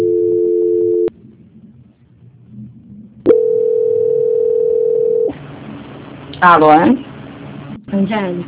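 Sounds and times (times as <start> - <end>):
telephone transfer tone during a call being put through: 0.0 - 1.1, 3.3 - 5.3
speech: 6.4 - 7.1, 7.9 - 8.4.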